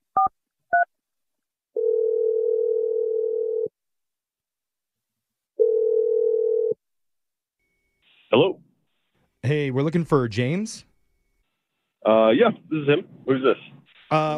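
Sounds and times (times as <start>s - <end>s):
telephone ringing tone: 1.8s - 3.7s, 5.6s - 6.8s
speech: 9.6s - 10.9s, 12.0s - 14.3s.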